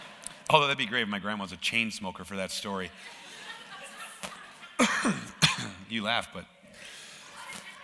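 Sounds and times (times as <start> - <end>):
speech: 0.5 - 3.3, 4.8 - 6.6
laughter: 2.8 - 5.4
person coughing: 4.8 - 5.9.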